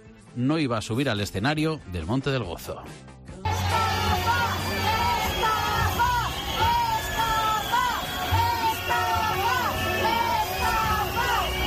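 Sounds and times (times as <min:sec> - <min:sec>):
speech: 0:00.4 - 0:03.2
large angry concert crowd chanting in unison: 0:03.4 - 0:11.6.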